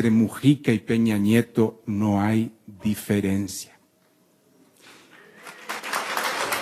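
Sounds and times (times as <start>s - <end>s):
speech: 0.0s - 3.8s
audience applause: 5.2s - 6.6s.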